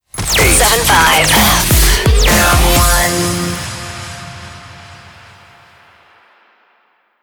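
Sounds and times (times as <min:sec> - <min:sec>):
rapid fire jingle in F minor: 0:00.1 - 0:05.6.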